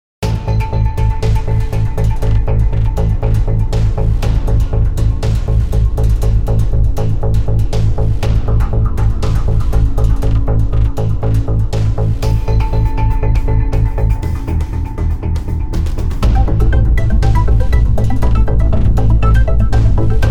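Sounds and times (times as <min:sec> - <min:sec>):
driving drone: 0:00.2 - 0:20.2.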